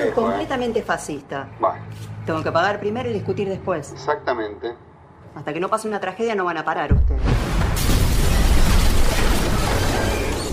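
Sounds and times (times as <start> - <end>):
speech: 0.0 - 7.5
car explosion: 6.9 - 10.5.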